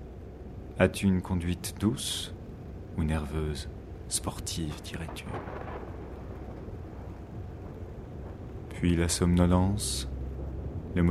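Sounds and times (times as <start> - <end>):
speech: 0.8 - 2.4, 3.0 - 5.7, 8.8 - 10.1, 10.9 - 11.1
distant rolling thunder as a storm approaches: 4.7 - 11.1.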